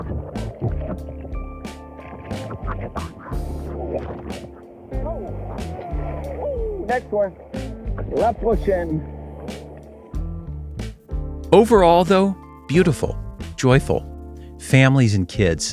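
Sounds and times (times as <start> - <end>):
paddle dipping through water: 0.0 - 10.2
tonal sound: 0.0 - 15.7
speech: 2.7 - 3.2, 6.9 - 9.2, 11.5 - 15.7.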